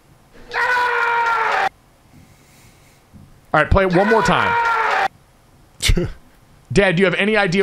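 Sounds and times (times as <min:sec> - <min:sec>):
man screaming: 0:00.4 - 0:01.7, 0:03.8 - 0:05.1, 0:07.5 - 0:07.6
speech: 0:03.6 - 0:04.7, 0:05.8 - 0:07.6.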